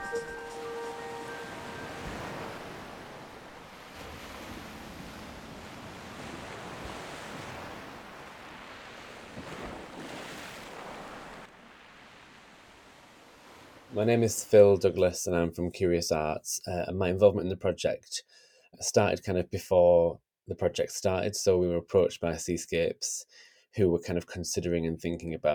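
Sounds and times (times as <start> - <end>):
ocean waves breaking on shore: 0.5 - 14.8
gusty wind: 1.3 - 14.0
speech: 14.0 - 25.5.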